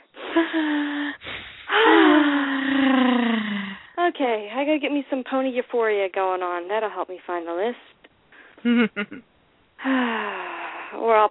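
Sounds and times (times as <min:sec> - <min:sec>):
long loud voiced sigh falling in pitch: 0:00.2 - 0:03.9
short sharp breath drawn in: 0:00.2 - 0:03.9
speech: 0:00.4 - 0:02.4, 0:04.1 - 0:08.0, 0:08.6 - 0:11.3.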